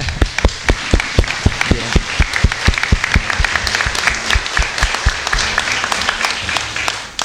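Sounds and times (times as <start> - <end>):
audience applause at a church mass: 0.0 - 7.2.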